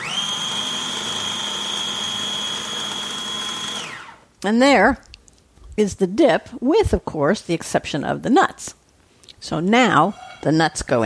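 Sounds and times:
kitchen blender whirring as it blends blue cheese dip: 0.0 - 4.3
speech: 4.4 - 5.1, 5.8 - 8.8, 9.4 - 11.0.

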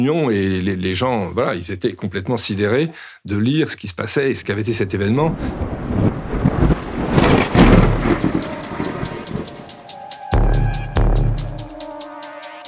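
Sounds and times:
speech: 0.0 - 5.9
loud thunderclap booming into a deep rumble: 4.7 - 11.8
steady patter: 6.5 - 12.6.

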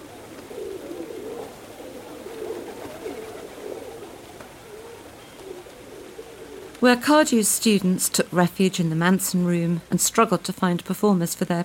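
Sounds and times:
pigeons cooing in Trafalgar Square: 0.0 - 6.9
speech: 6.8 - 11.6.

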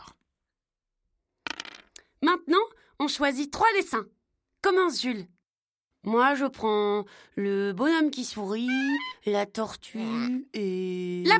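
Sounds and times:
dice clattering across a hard surface: 1.5 - 2.0
speech: 2.4 - 5.4, 6.0 - 11.3.

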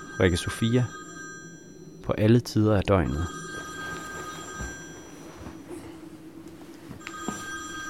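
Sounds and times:
telephone ringing with bright electronic tone: 0.0 - 2.0, 3.1 - 5.7, 7.0 - 7.8
speech: 0.2 - 1.0, 2.1 - 3.4.

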